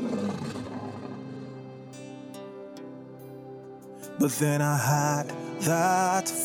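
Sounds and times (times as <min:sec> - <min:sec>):
lion roaring: 0:00.0 - 0:01.6
speech: 0:04.2 - 0:06.4.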